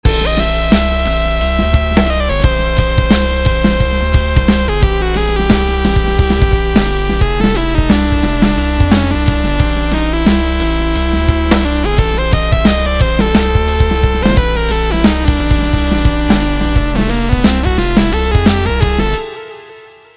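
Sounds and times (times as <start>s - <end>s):
chromatic jazz music: 0.0s - 20.1s.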